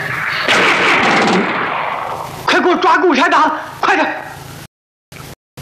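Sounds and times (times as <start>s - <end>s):
gunshots: 0.1s - 2.7s
speech: 2.8s - 4.3s.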